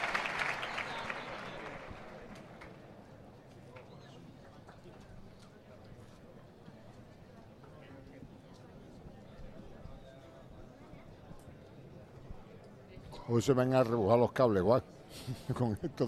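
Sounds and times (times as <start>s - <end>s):
large bullring crowd ovation: 0.0s - 2.8s
speech: 13.3s - 16.0s.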